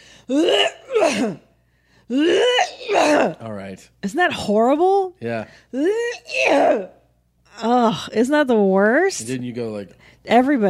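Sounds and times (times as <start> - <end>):
person imitating obnoxious throat clearing: 0.3 - 1.5, 2.1 - 3.4, 5.8 - 6.9
speech: 0.3 - 1.5, 2.1 - 2.5, 3.4 - 7.0, 7.6 - 10.6.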